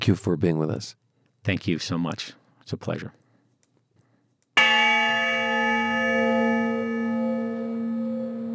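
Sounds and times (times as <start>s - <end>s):
speech: 0.0s - 3.2s
single deep memorial honor bell toll: 4.6s - 8.4s.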